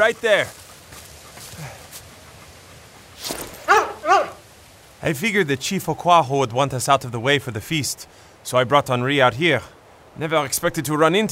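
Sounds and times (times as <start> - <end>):
speech: 0.0 - 0.6, 5.0 - 11.3
dog yelping and whimpering on a walk: 3.7 - 4.4.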